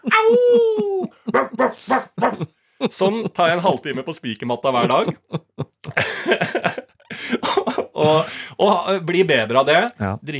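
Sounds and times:
person imitating a dog howling: 0.0s - 2.4s
laughter: 0.0s - 4.0s, 4.7s - 8.4s
speech: 1.4s - 5.4s, 6.2s - 6.8s, 8.0s - 10.3s.

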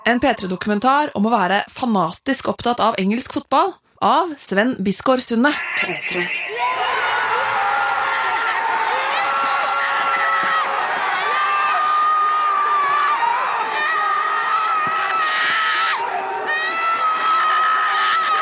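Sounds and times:
speech: 0.0s - 7.0s
football fan family cheering a goal: 5.6s - 18.3s
people whooping and yelling including children: 5.6s - 18.3s.

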